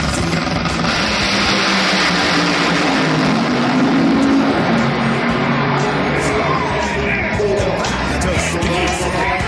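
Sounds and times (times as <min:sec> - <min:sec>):
nitro funny car drag racing engine roaring at full throttle: 0:00.0 - 0:09.4
crowd murmuring: 0:05.0 - 0:09.4.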